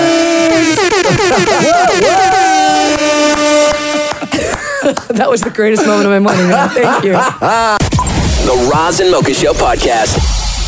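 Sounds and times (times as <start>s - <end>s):
air horn sound effect blast: 0.0s - 4.6s
laughter: 0.8s - 2.2s, 3.7s - 7.8s
speech: 4.9s - 7.9s, 8.5s - 10.4s.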